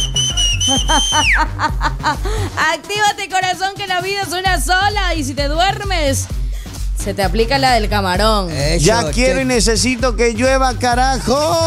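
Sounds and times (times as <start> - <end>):
long loud high whistle as an activation cue: 0.0 - 1.4
rhythmic lower-pitched sounds: 0.0 - 11.6
laughter: 0.4 - 2.6
speech: 0.7 - 6.4, 7.0 - 11.6.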